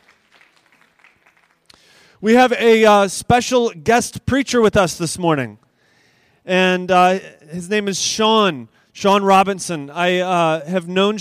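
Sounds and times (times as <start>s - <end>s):
room full of people applauding: 0.0s - 1.9s
speech: 2.2s - 5.7s, 6.4s - 11.2s.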